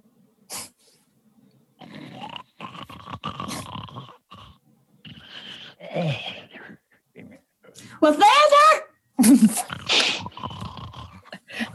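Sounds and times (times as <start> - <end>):
raspy throaty snoring: 1.8 - 6.6, 9.6 - 11.7
speech: 8.0 - 8.6.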